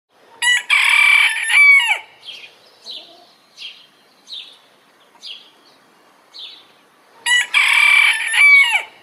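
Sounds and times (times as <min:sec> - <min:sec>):
rooster: 0:00.3 - 0:02.1, 0:07.2 - 0:09.0.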